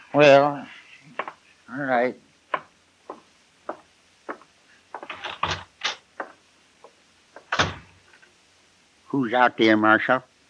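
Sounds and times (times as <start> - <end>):
speech: 0.1 - 0.8, 1.8 - 2.3, 9.2 - 10.3
door opening and closing: 5.0 - 6.4, 7.4 - 8.0.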